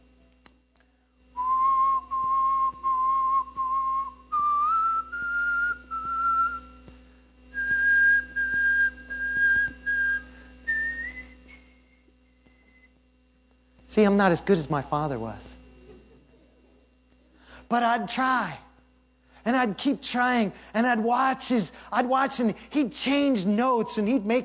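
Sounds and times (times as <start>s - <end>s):
person whistling a short simple tune: 1.4s - 6.8s, 7.5s - 13.0s
speech: 14.0s - 15.5s, 17.7s - 18.6s, 19.4s - 24.4s.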